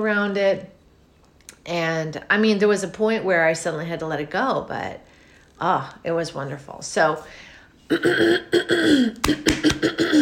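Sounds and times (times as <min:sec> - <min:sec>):
speech: 0:00.0 - 0:00.8, 0:01.6 - 0:10.1
person clearing throat: 0:07.9 - 0:10.1.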